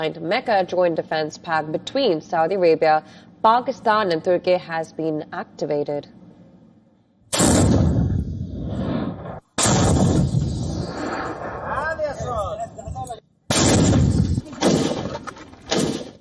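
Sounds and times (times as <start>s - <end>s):
speech: 0.0s - 6.2s
loud booming explosions from Houthi strikes in Riyadh Saudi Arabia: 7.3s - 15.1s.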